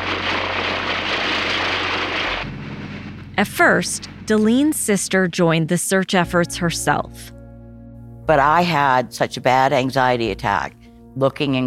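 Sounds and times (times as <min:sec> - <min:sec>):
aircraft engine roar over farmland during a police search: 0:00.0 - 0:07.2
low droning hum: 0:00.0 - 0:11.6
speech: 0:03.4 - 0:07.4, 0:08.3 - 0:11.6.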